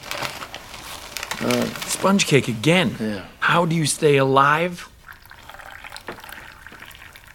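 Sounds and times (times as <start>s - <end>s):
speech: 1.4s - 4.9s
tea pouring into a cup: 5.0s - 7.3s.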